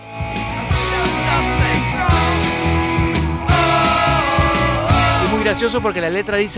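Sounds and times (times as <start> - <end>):
dense distorted electric guitars: 0.0 - 6.0
punk rock song with distorted electric guitars and drums: 0.0 - 6.5
steady pounding drums: 3.4 - 5.4
speech: 5.5 - 6.5.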